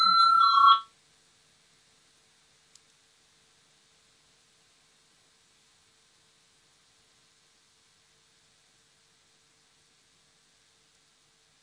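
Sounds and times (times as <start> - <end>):
bright electric parliamentary voting bell ringing: 0.0 - 0.9.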